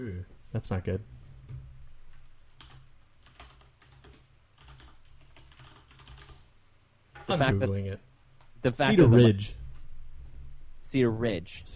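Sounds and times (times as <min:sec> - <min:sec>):
speech: 0:00.0 - 0:01.2, 0:07.3 - 0:09.6, 0:10.9 - 0:11.7
low steady hum: 0:00.0 - 0:11.7
mechanical keyboard clicking keystrokes: 0:02.6 - 0:06.4.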